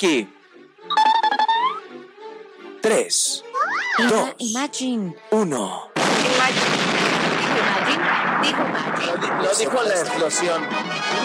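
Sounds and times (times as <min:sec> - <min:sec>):
speech: 0:00.0 - 0:00.4, 0:02.8 - 0:11.2
explosion sound effect with roaring blast and crackling debris: 0:06.0 - 0:10.7.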